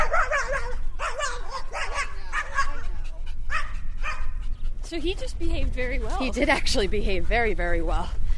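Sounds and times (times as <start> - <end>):
small white dog barking frantically at a passing dog on grass: 0.0 - 4.4
steady low rumble of outdoor noise: 0.0 - 8.3
speech: 4.9 - 8.2.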